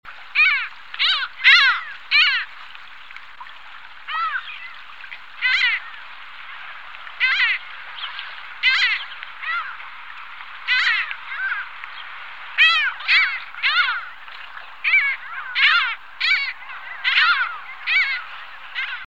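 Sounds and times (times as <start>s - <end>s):
black-headed gull: 0.4s - 2.5s, 4.1s - 4.8s, 5.4s - 6.0s, 7.2s - 7.7s, 8.6s - 9.8s, 10.6s - 11.7s, 12.6s - 14.2s, 14.8s - 19.0s.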